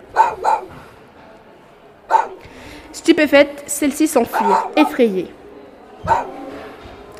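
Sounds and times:
small dog barking: 0.1 - 0.8, 2.1 - 2.4, 4.3 - 5.0, 6.1 - 6.4
speech: 3.1 - 5.4.

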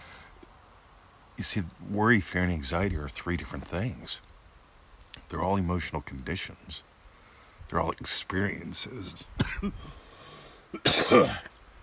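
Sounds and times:
speech: 1.4 - 4.3, 5.3 - 6.9, 7.7 - 10.0, 10.7 - 11.6
person coughing after inhaling a bug: 9.4 - 9.9, 10.8 - 11.6.

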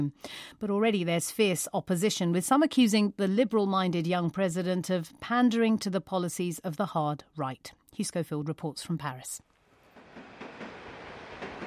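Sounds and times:
speech: 0.0 - 9.5
metro train rumbling past on elevated tracks in Paris: 9.8 - 11.6
clacks from track joints: 10.0 - 11.6.

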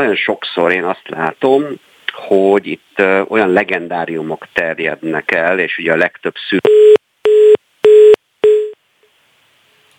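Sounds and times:
speech: 0.0 - 6.9
telephone busy tone after a dropped call: 6.7 - 8.8.

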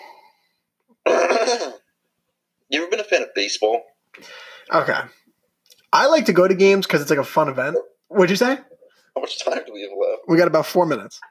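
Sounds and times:
person coughing away from their phone: 1.0 - 1.8
speech: 1.5 - 1.8, 2.7 - 5.2, 5.9 - 11.2.

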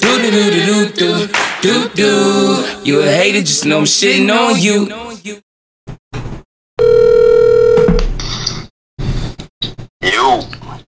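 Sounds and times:
speech: 0.2 - 5.4
telephone ringing tone: 6.8 - 8.0.

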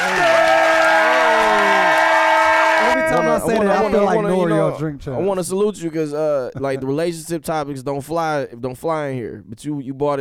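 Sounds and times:
crowd clapping and cheering: 0.0 - 4.0
speech: 3.4 - 10.2.

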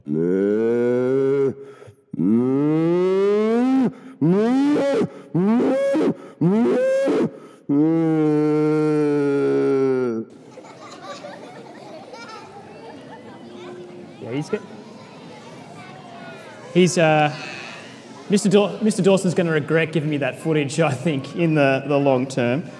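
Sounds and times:
cows mooing: 0.0 - 1.6, 2.2 - 10.2
laughter: 7.8 - 13.8
speech: 16.8 - 17.5, 18.3 - 22.7.

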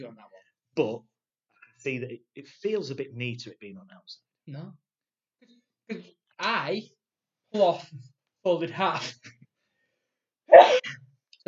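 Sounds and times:
speech: 0.0 - 1.1, 1.8 - 4.8, 5.4 - 9.4, 10.5 - 11.4
person sneezing: 10.5 - 10.9.

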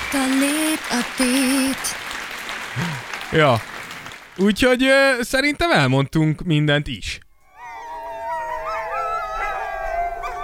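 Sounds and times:
speech: 0.1 - 2.0, 3.3 - 3.7, 4.4 - 7.2
wolves or dogs howling in the tundra: 7.4 - 10.4.

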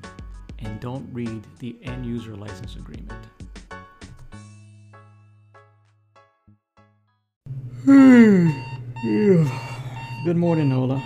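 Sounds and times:
speech: 0.6 - 3.4, 7.8 - 9.6, 10.2 - 11.0
electronic alarm clock chime: 8.6 - 11.0.

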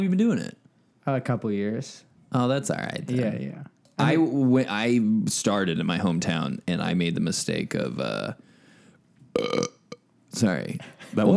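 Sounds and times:
speech: 0.0 - 8.5, 9.3 - 11.3
loud throaty burp: 9.4 - 10.0.

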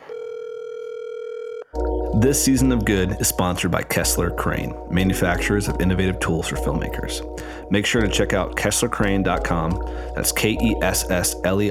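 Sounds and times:
telephone dial tone while a call is placed: 0.0 - 1.8
speech: 1.7 - 11.6.

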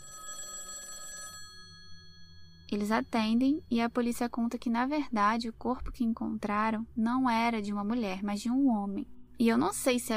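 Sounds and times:
telephone ringing with a trilling electronic tone: 0.0 - 3.4
faint hum: 1.5 - 10.1
speech: 2.7 - 10.1.

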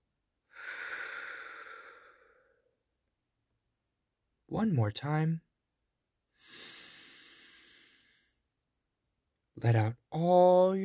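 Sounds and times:
deep slow breath during a bedtime breathing exercise: 0.5 - 2.8, 6.3 - 8.5
speech: 4.5 - 5.5, 9.6 - 10.8.

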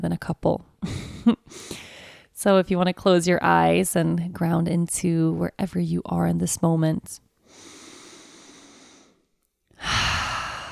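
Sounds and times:
speech: 0.0 - 1.1, 2.4 - 7.7
deep cleansing breath in through the nose and out through the mouth: 1.5 - 2.3, 7.4 - 10.7.

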